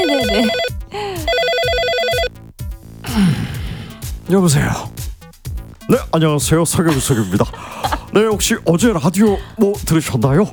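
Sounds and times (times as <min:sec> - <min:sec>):
laughter: 0:00.0 - 0:01.5, 0:06.7 - 0:09.6
telephone ringing: 0:00.0 - 0:02.3
music beat: 0:00.0 - 0:10.5
speech: 0:00.3 - 0:00.7, 0:04.3 - 0:04.9, 0:05.9 - 0:10.5.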